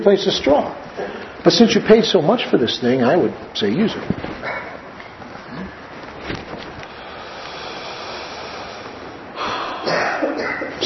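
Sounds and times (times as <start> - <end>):
speech: 0.0 - 0.8, 1.4 - 4.3
breath blown out through pursed lips: 6.9 - 9.9.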